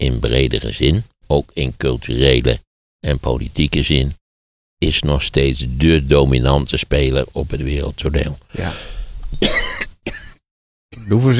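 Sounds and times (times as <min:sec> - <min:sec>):
speech: 0:00.2 - 0:04.2, 0:04.8 - 0:10.2, 0:11.1 - 0:11.3
dry coughs: 0:08.6 - 0:10.4.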